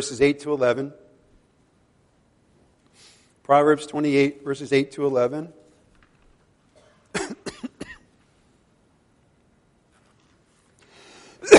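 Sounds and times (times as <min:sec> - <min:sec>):
speech: 0:00.0 - 0:01.0, 0:03.5 - 0:05.6
noisy breath or throat sound: 0:02.9 - 0:03.4, 0:10.8 - 0:11.4
harsh coughs: 0:06.8 - 0:08.1.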